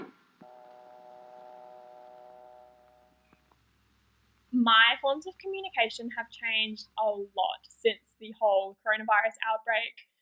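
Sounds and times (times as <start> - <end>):
continuous telephone dial tone: 0.4 - 3.0
speech: 4.6 - 10.1.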